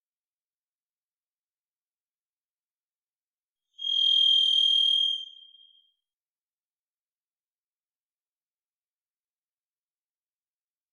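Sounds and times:
Varied thrush Ixoreus naevius song whistle in the Pacific Northwest: 3.8 - 5.8.

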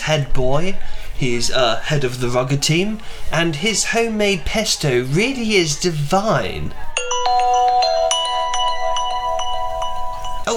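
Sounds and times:
speech: 0.1 - 6.9
mobile phone ringtone electronic melody: 7.0 - 10.5.

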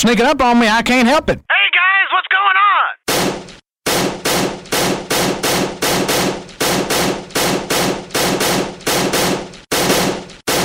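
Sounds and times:
speech: 0.0 - 1.9
gunshots: 3.1 - 10.6.

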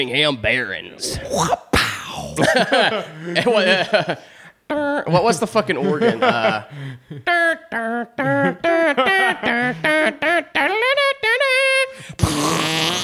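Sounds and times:
speech: 0.0 - 1.6, 2.4 - 10.4
laughter: 2.4 - 4.3, 5.7 - 11.9
loud buzzy squeaky fart noises: 12.1 - 13.0.

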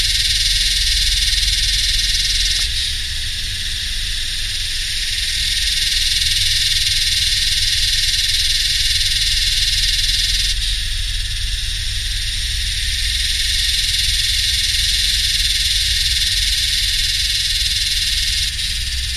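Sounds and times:
Yellowbelly cicadas (Psaltoda harrisii) singing in the heat in New South Wales: 0.0 - 19.1
deep humming machine: 0.0 - 19.1.

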